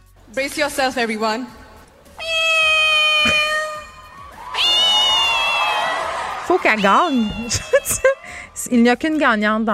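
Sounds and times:
speech: 0.3 - 1.6, 6.5 - 9.7
woman on stage imitating a cat's meow: 2.2 - 5.9, 6.6 - 8.4
laughter: 5.3 - 8.6.

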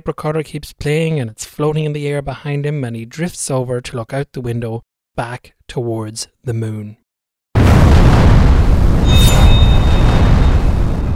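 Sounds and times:
speech: 0.0 - 7.0
explosion aboard a spacecraft: 7.6 - 11.1
faint metallic whine: 9.0 - 11.1.

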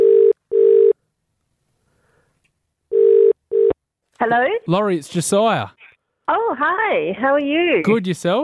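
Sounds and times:
telephone ringback tone of an outgoing phone call: 0.0 - 1.0, 2.9 - 3.8
speech: 4.2 - 8.4.

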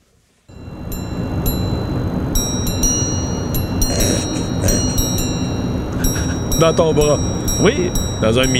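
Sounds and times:
steady low rumbling hum: 0.5 - 8.5
wristwatch grande sonnerie striking mechanism chime strikes: 0.5 - 8.5
speech: 6.6 - 8.5.

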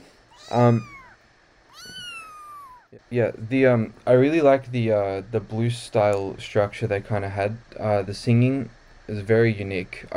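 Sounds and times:
small female cat meowing: 0.3 - 3.0
speech: 0.5 - 1.0, 3.1 - 10.1.

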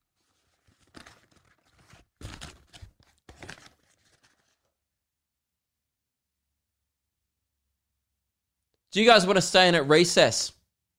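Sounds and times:
paper rustling and crumpling in a classroom: 0.0 - 4.8
speech: 9.0 - 10.6.

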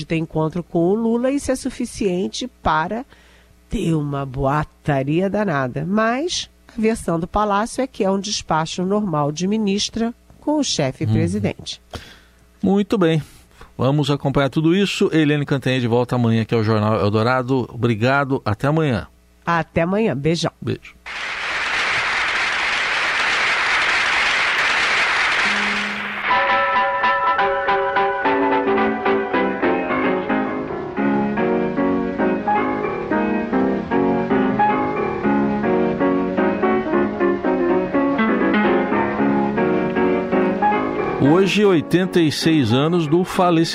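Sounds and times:
speech: 0.0 - 21.4, 41.5 - 43.7
applause: 21.0 - 26.6
solo jazz piano playing chords and melody: 25.4 - 43.7.

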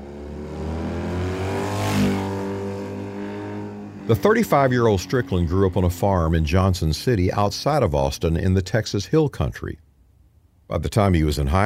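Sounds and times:
motorcycle engine revving: 0.0 - 7.7
speech: 4.1 - 9.8, 10.7 - 11.6.

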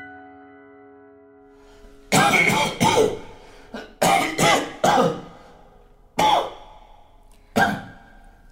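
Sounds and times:
man with consumption coughing hard: 2.1 - 5.5, 6.2 - 6.8, 7.6 - 8.1.

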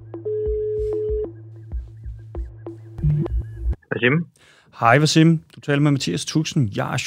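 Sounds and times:
phone line electronic ringback tone: 0.3 - 1.3
speech: 4.0 - 7.0.

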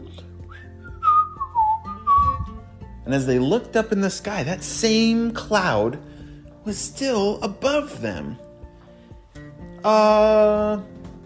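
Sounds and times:
person whistling a short gliding tune on a hike: 0.4 - 2.6
speech: 3.1 - 8.4, 9.8 - 10.9.

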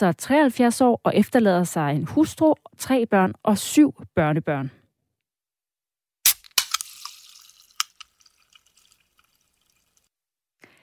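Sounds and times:
speech: 0.0 - 4.8
beer can opening: 6.3 - 8.9
fizzy hiss of carbonation from a beer can: 6.6 - 10.0.

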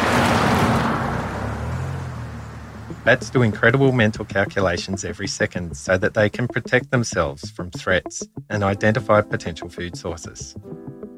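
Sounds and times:
car engine roaring as it rushes past and drives off: 0.0 - 3.3
speech: 3.0 - 10.9.

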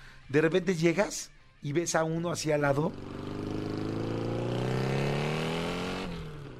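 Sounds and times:
speech: 0.3 - 3.2
motorcycle engine revving: 2.4 - 6.5.

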